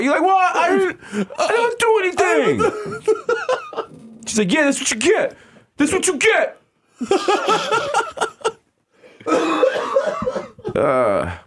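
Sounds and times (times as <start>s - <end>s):
speech: 0.0s - 3.6s, 4.3s - 8.3s, 9.2s - 9.7s, 10.8s - 11.4s
laughter: 0.6s - 4.0s, 7.0s - 8.6s
person coughing in rough coughing fits: 9.2s - 11.0s.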